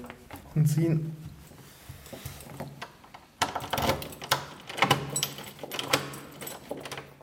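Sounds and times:
speech: 0.6 - 1.2
key rattling and turning in an apartment door lock: 2.4 - 7.2.

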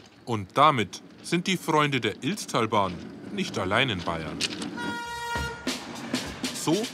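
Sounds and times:
train rumbling past: 0.0 - 6.9
train wheels clacking over rail joints: 0.0 - 6.9
speech: 0.3 - 5.0, 6.6 - 6.9
sustained train horn toot: 4.8 - 5.9.

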